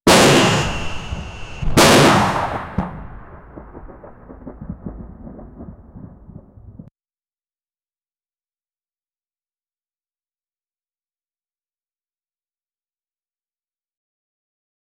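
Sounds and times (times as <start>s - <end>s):
chaotic bombing: 0.1s - 6.9s
chaotic gunfire: 0.1s - 6.9s.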